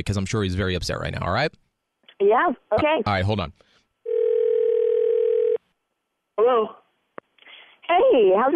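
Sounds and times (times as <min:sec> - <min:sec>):
speech: 0:00.0 - 0:01.6, 0:02.2 - 0:03.7, 0:06.4 - 0:06.8, 0:07.9 - 0:08.5
phone line ringing on the caller's end: 0:04.1 - 0:05.6.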